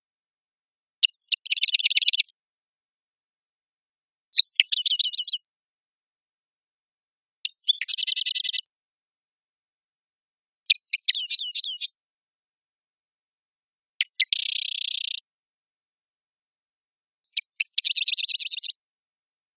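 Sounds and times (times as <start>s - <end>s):
Cistothorus palustris singing at Marymoor Park in Redmond, Washington: 1.0s - 2.4s, 4.3s - 5.6s, 7.4s - 8.8s, 10.6s - 12.0s, 14.0s - 15.3s, 17.3s - 18.8s.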